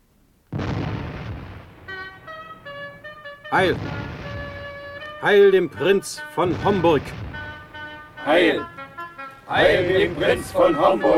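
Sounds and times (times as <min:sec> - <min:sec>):
cannon firing in a stage drama: 0:00.5 - 0:02.5, 0:03.6 - 0:05.2, 0:06.4 - 0:08.0, 0:10.0 - 0:10.9
speech: 0:03.5 - 0:04.0, 0:05.2 - 0:07.2, 0:08.2 - 0:08.8, 0:09.5 - 0:11.1.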